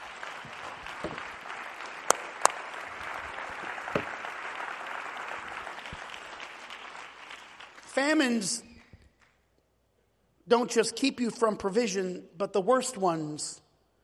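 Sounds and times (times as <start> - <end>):
audience applauding: 0.0 - 9.3
speech: 8.0 - 8.7, 10.5 - 13.6.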